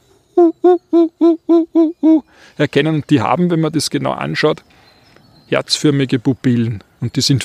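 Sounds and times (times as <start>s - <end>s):
European fire-bellied toad calling: 0.0s - 2.4s
speech: 2.6s - 4.8s, 5.5s - 7.4s.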